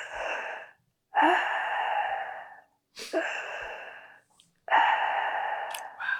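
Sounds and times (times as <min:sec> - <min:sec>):
person imitating heavy gasping breaths of a woman: 0:00.0 - 0:06.1.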